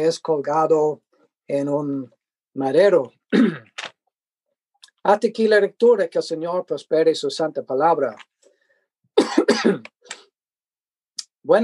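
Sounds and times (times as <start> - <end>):
speech: 0.0 - 3.7, 5.0 - 8.3, 9.2 - 10.2, 11.4 - 11.6
rough coughs: 3.3 - 3.8, 9.2 - 10.0
throat-clearing rasp: 3.3 - 3.8, 9.2 - 10.0.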